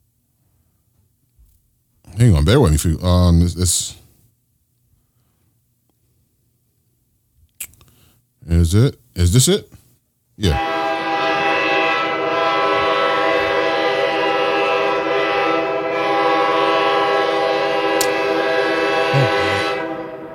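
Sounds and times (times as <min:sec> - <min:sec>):
speech: 0:02.2 - 0:04.0, 0:08.7 - 0:09.8, 0:10.4 - 0:10.7
several trains passing: 0:10.4 - 0:20.3
high-pitched squeal: 0:10.5 - 0:20.3.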